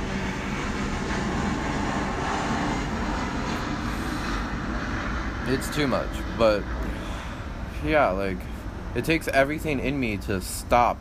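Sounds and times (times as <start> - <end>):
airplane passing overhead: 0.0 - 11.0
speech: 5.5 - 6.9, 7.8 - 11.0.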